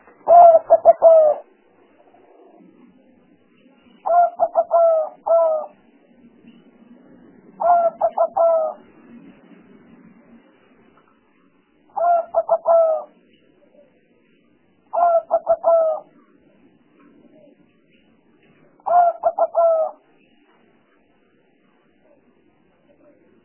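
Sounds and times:
spotted dove cooing as a lure sound: 0:00.0 - 0:02.7, 0:04.0 - 0:05.8, 0:07.6 - 0:08.8, 0:11.9 - 0:13.9, 0:14.9 - 0:16.2, 0:18.8 - 0:20.0
low background noise: 0:00.0 - 0:23.4.

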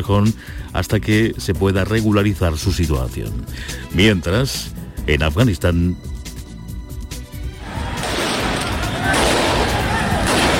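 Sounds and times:
speech: 0:00.0 - 0:06.2
gunfire from Taliban fighters shooting at protesters in Jalalabad, Afghanistan: 0:07.9 - 0:10.5.

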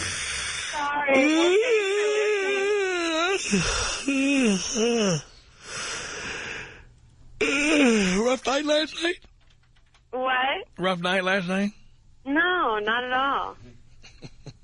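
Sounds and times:
person yawning: 0:00.0 - 0:05.3, 0:07.4 - 0:08.2
sighing vocal glides: 0:00.0 - 0:05.3
speech: 0:01.0 - 0:01.8, 0:03.5 - 0:05.3, 0:08.4 - 0:09.3, 0:10.1 - 0:13.7.

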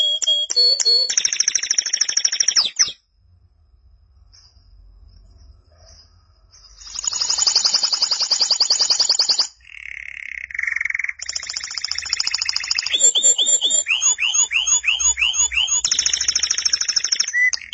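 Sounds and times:
canary singing: 0:00.0 - 0:03.0, 0:06.6 - 0:17.7.

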